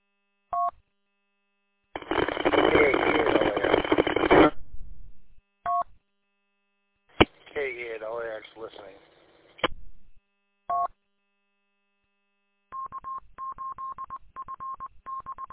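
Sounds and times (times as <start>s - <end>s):
loud hissing static: 2.0s - 4.6s, 7.2s - 9.7s
telephone dialing tones: 12.8s - 15.5s.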